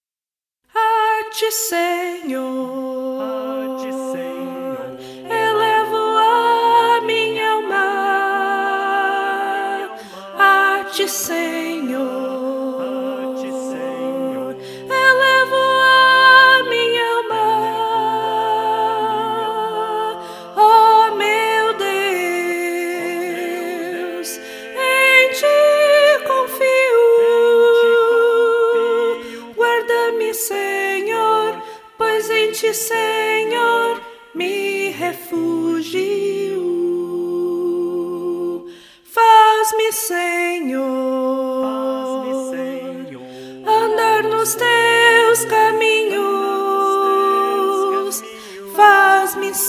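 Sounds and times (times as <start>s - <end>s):
soprano singing: 0.7s - 49.6s.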